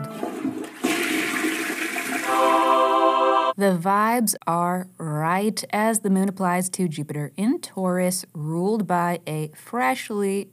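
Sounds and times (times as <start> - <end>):
toilet gurgling refill: 0.0 - 2.7
toilet flushing: 0.0 - 3.6
speech: 3.6 - 10.5.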